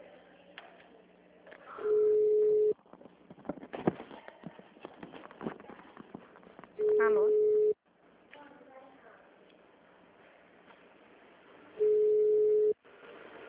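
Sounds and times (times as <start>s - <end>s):
rustling: 2.8s - 7.0s
low-pitched telephone ringing tone on a call to a bank branch line: 6.8s - 7.8s, 11.8s - 12.8s
speech: 7.0s - 7.4s.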